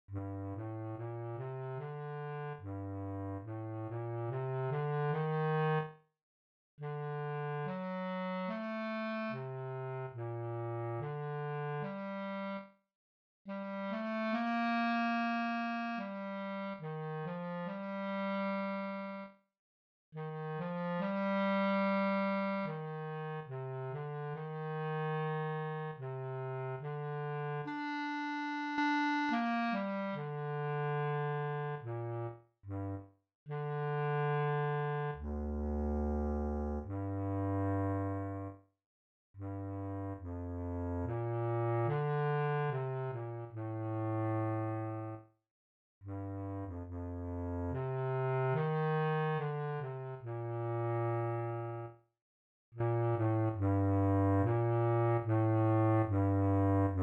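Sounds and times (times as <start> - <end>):
contra bass clarinet: 0.0 - 6.0, 6.8 - 12.8, 13.5 - 19.4, 20.1 - 38.6, 39.4 - 45.2, 46.0 - 52.0, 52.8 - 57.0.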